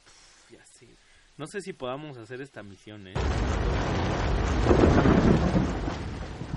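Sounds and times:
speech: 0.8 - 6.0
low thunder rumble: 3.2 - 6.5
rain hissing: 3.2 - 6.5.

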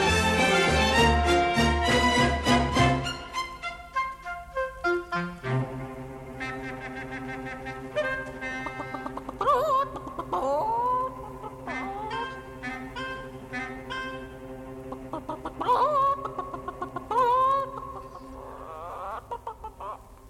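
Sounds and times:
steady sustained musical tones: 0.0 - 19.5
hen clucking and squawking: 6.4 - 20.2.

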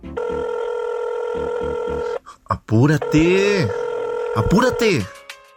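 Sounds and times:
telephone ring tone on a call to technical support: 0.2 - 2.2, 3.0 - 4.9
speech: 2.7 - 5.2.

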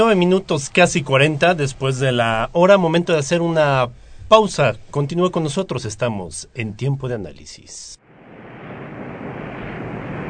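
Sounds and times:
speech: 0.0 - 8.0
ocean surf waves crashing: 8.0 - 10.2.

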